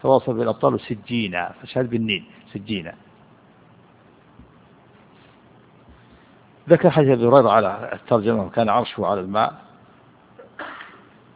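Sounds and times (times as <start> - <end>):
speech: 0.0 - 3.1, 6.7 - 9.7
person sneezing: 10.4 - 11.2.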